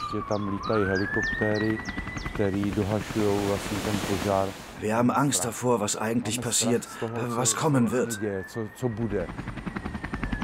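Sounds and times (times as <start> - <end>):
emergency siren wailing: 0.0 - 3.6, 6.2 - 10.4
speech: 0.1 - 9.7.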